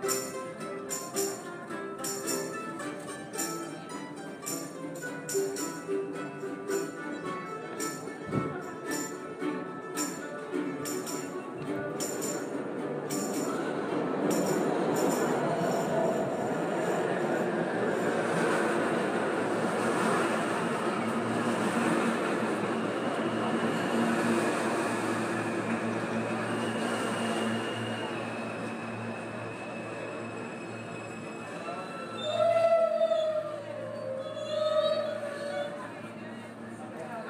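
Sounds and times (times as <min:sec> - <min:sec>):
clacking rail joints: 0:00.0 - 0:07.1, 0:07.8 - 0:18.9
subway train rumbling through an underground station: 0:00.0 - 0:37.2
brief squeal of subway train: 0:26.5 - 0:36.3.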